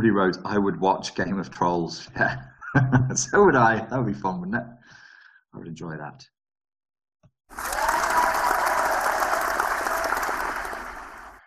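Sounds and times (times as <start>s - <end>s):
speech: 0.0s - 6.4s, 7.5s - 7.8s
canned applause from video chat: 7.5s - 11.4s.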